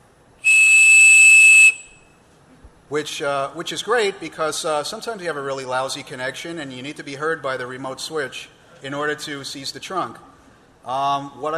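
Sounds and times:
whistle blowing a steady pure 2600 hertz tone: 0:00.4 - 0:02.2
speech: 0:02.9 - 0:11.5.

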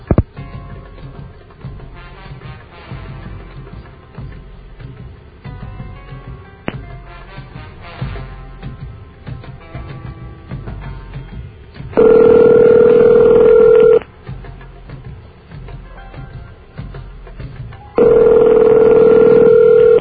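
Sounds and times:
telephone ringback tone from a call to directory assistance: 0:12.0 - 0:14.0, 0:18.0 - 0:19.9.

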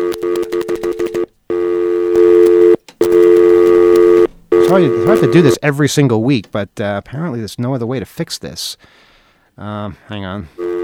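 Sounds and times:
short electronic telephone beeps: 0:00.0 - 0:05.6
speech: 0:04.7 - 0:10.7.

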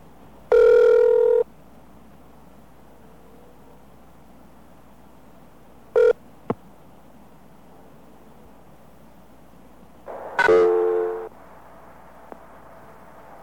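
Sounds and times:
telephone signal tones on a long-distance collect call: 0:00.5 - 0:01.4, 0:06.0 - 0:06.2, 0:10.3 - 0:11.3
short telephone beep: 0:10.4 - 0:11.3.

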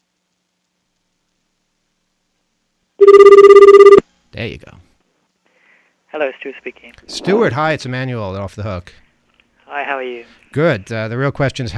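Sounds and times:
electronic ringback tone of an overseas telephone call: 0:03.0 - 0:04.0
speech: 0:04.4 - 0:04.9, 0:06.2 - 0:09.0, 0:09.7 - 0:11.7.

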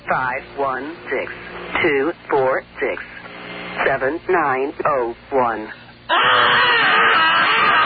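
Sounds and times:
steady rush of noise: 0:00.0 - 0:04.3
person screaming and wailing over a phone line: 0:06.1 - 0:07.8.

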